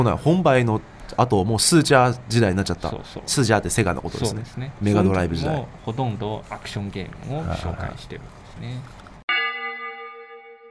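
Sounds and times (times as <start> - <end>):
speech: 0.0 - 9.0
single bell chime ringing: 9.3 - 10.6.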